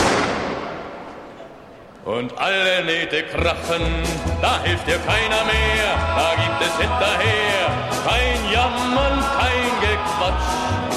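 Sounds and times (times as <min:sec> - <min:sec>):
gunshot bang: 0:00.0 - 0:01.5
long decaying rumble and echo: 0:00.0 - 0:02.1
speech: 0:02.0 - 0:10.9.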